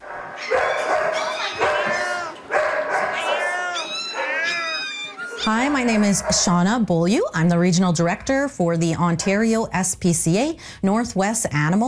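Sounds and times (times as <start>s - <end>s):
dogs barking and yelping at animal shelter: 0.0s - 6.6s
speech: 5.4s - 11.8s.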